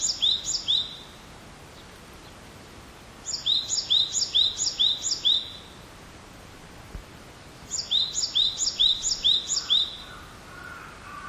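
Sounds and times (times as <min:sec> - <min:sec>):
great tit singing: 0:00.0 - 0:01.1, 0:03.3 - 0:05.7, 0:07.7 - 0:11.2
light background hiss: 0:00.0 - 0:11.2.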